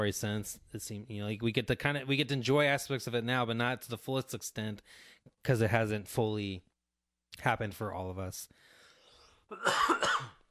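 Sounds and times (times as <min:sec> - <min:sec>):
speech: 0:00.0 - 0:06.7, 0:07.3 - 0:08.7, 0:09.5 - 0:10.4
person coughing: 0:09.5 - 0:10.4.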